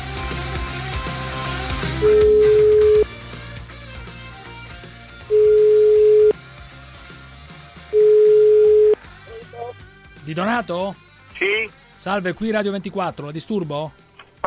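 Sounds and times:
music: 0:00.0 - 0:14.4
telephone ringback tone while placing a call: 0:02.0 - 0:03.1, 0:05.3 - 0:06.4, 0:07.9 - 0:09.0
speech: 0:10.4 - 0:14.4.

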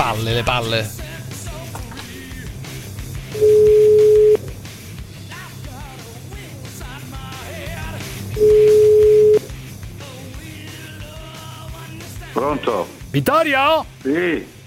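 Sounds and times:
speech: 0:00.2 - 0:01.1, 0:12.4 - 0:14.6
telephone ringback tone while placing a call: 0:03.4 - 0:04.4, 0:08.4 - 0:09.5.

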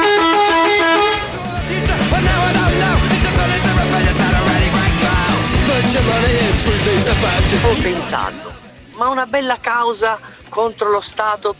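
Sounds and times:
loud sustained bus horn blaring: 0:00.0 - 0:01.4
rhythmic music-like clatter: 0:01.2 - 0:08.5
speech: 0:07.9 - 0:11.5.

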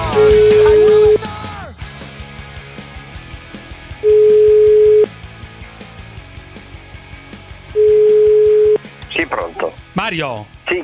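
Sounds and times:
steady single-pitch telephone tone while a call is being placed: 0:00.1 - 0:01.2, 0:04.1 - 0:05.1, 0:07.8 - 0:08.8
speech: 0:10.1 - 0:10.8.

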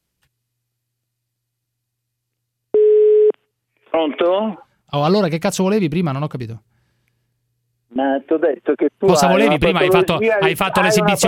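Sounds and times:
telephone line tone during outgoing call: 0:02.8 - 0:03.4
speech: 0:03.9 - 0:06.7, 0:08.0 - 0:11.2.

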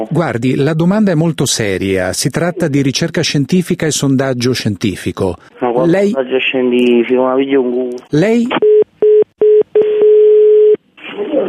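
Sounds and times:
speech: 0:00.0 - 0:08.7
telephone dial tone after a call is hung up: 0:08.6 - 0:10.8
telephone line beeps after a call is hung up: 0:08.6 - 0:10.8.

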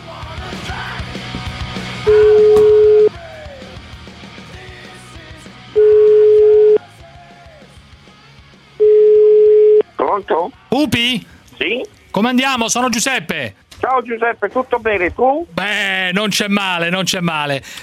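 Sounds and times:
telephone ringing tones of a call being placed: 0:02.1 - 0:03.2, 0:05.8 - 0:06.8, 0:08.8 - 0:09.9
speech: 0:10.2 - 0:17.8.

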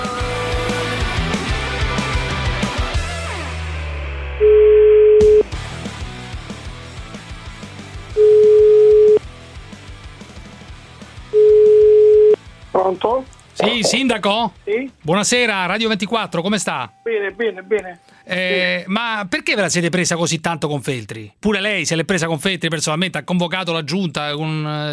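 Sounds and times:
music: 0:00.0 - 0:04.4, 0:05.3 - 0:18.8
telephone tones while a call is placed: 0:04.4 - 0:05.5, 0:08.2 - 0:09.2, 0:11.4 - 0:12.4, 0:16.6 - 0:18.6
speech: 0:13.8 - 0:24.9.

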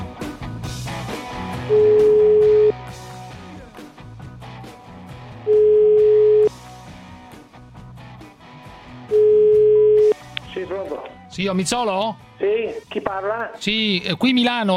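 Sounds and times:
music: 0:00.0 - 0:14.7
telephone ringback tone while a call is being placed: 0:01.6 - 0:02.8, 0:05.5 - 0:06.5, 0:09.1 - 0:10.2
speech: 0:11.4 - 0:14.7.

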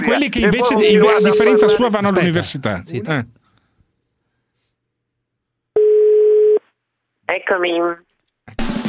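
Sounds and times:
speech: 0:00.0 - 0:03.4, 0:07.3 - 0:08.7
electronic telephone ringing tone: 0:00.6 - 0:01.8, 0:05.8 - 0:06.6.

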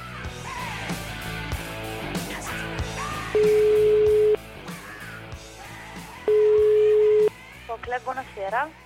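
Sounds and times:
music: 0:00.0 - 0:08.8
outgoing phone call ringback tone: 0:03.4 - 0:04.4, 0:06.3 - 0:07.3
speech: 0:08.5 - 0:08.8.

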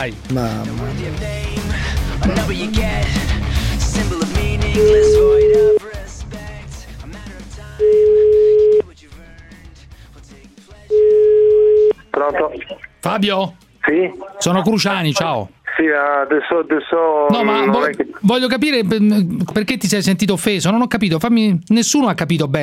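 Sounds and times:
speech: 0:00.0 - 0:06.0, 0:12.2 - 0:22.6
music playing loudly: 0:00.0 - 0:11.1
telephone ringing tone while placing a phone call: 0:04.8 - 0:05.8, 0:07.8 - 0:08.8, 0:10.9 - 0:12.0.

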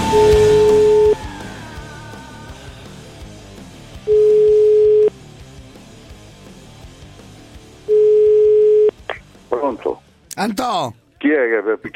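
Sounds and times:
telephone line ringing tone during an outgoing call: 0:00.2 - 0:01.2, 0:04.1 - 0:05.1, 0:07.9 - 0:08.9
speech: 0:10.4 - 0:11.9.

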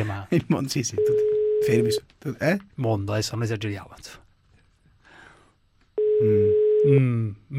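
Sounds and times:
speech: 0:00.0 - 0:04.2, 0:06.2 - 0:07.5
telephone ringing tone on an outgoing call: 0:01.0 - 0:02.0, 0:06.0 - 0:06.9.

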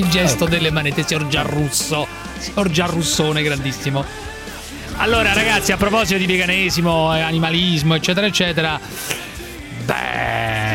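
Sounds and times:
speech: 0:00.0 - 0:04.3, 0:05.0 - 0:09.3
sheep bleating: 0:09.9 - 0:10.7.

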